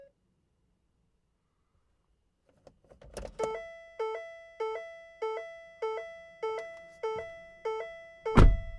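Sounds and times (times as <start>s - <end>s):
open car beeps: 3.4s - 8.7s.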